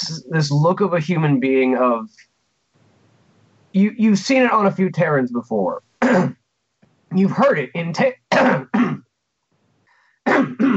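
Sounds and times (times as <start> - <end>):
speech: 0.0 - 2.3, 3.7 - 6.4, 7.1 - 9.0, 10.3 - 10.7
person clearing throat: 6.0 - 6.4, 8.3 - 9.0, 10.3 - 10.7.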